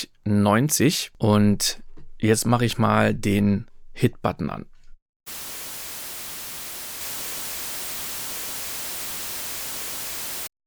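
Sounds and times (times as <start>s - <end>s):
speech: 0.0s - 5.4s
broadband noise test signal: 5.3s - 10.5s.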